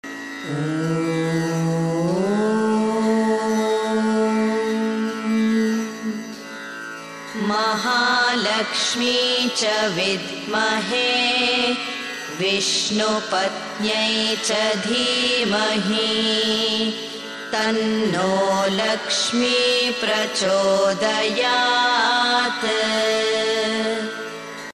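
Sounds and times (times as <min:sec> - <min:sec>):
woman chanting a mantra: 0:00.5 - 0:06.3, 0:07.4 - 0:24.2.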